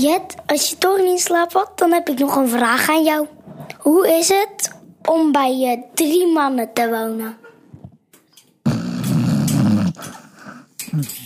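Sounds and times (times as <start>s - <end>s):
speech: 0.0s - 7.4s, 10.9s - 11.2s
dog snoring: 8.6s - 10.6s.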